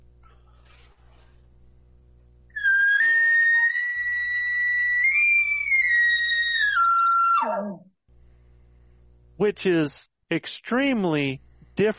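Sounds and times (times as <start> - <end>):
elk location bugle blown on an elk call: 2.6 - 7.8
speech: 9.4 - 11.9.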